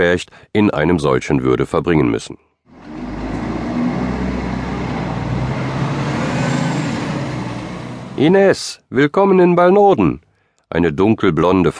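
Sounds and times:
speech: 0:00.0 - 0:02.5, 0:08.2 - 0:11.7
broad roar of town centre street traffic: 0:02.7 - 0:08.4
bus deep engine rumble while stopping in town traffic: 0:02.7 - 0:08.4.

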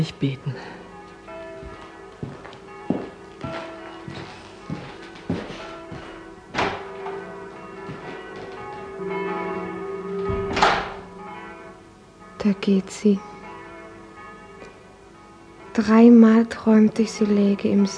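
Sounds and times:
speech: 0:00.0 - 0:00.8, 0:12.4 - 0:13.3, 0:15.8 - 0:17.9
bell ringing: 0:07.2 - 0:14.6.

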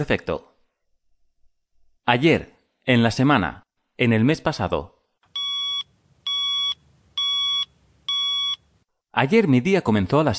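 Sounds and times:
speech: 0:00.0 - 0:00.5, 0:02.1 - 0:05.0, 0:09.2 - 0:10.3
alarm clock beeping: 0:05.4 - 0:08.7.

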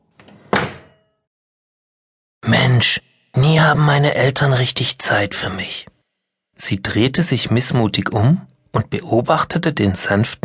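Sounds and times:
door falling shut with a solid thud: 0:00.2 - 0:01.0
speech: 0:02.4 - 0:05.9, 0:06.6 - 0:10.4.

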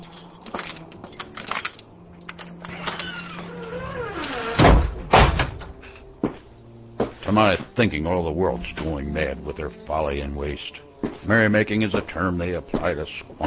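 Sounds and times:
front door creaking: 0:02.3 - 0:06.1
front door slamming shut with heavy booming thuds: 0:02.7 - 0:06.4
speech: 0:07.4 - 0:13.4.

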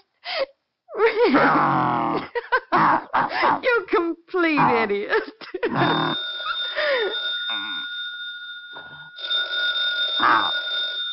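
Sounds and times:
speech: 0:01.2 - 0:06.2
telephone bell ringing: 0:05.7 - 0:11.1.

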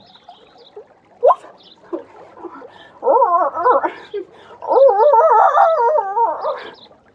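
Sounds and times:
woman imitating a hound's howl by a stream in the evening: 0:03.0 - 0:03.9, 0:04.6 - 0:06.6.

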